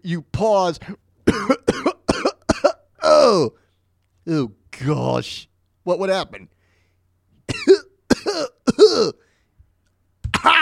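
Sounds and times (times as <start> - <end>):
speech: 0.0 - 1.8, 3.2 - 3.6, 4.2 - 6.6, 9.0 - 9.2
person coughing raspily: 1.3 - 2.9, 7.5 - 9.3.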